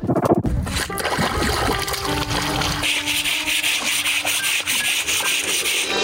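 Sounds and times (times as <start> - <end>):
splashing water from washing clothes by hand in a river: 0.5 - 3.2
wet rubbing of clothes scrubbed against a stone: 0.8 - 6.0
continuous rush of flowing river water: 0.9 - 3.2.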